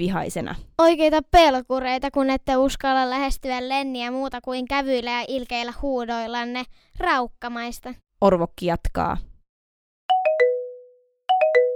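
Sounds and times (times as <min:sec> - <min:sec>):
speech: 0:00.0 - 0:09.3
school bell chime sounding at recess's end: 0:10.1 - 0:11.7.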